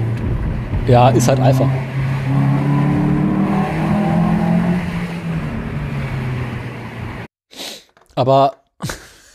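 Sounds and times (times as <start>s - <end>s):
Alfa Romeo 1.6-litre car engine revving: 0.0s - 7.3s
speech: 0.8s - 2.5s, 8.2s - 9.0s.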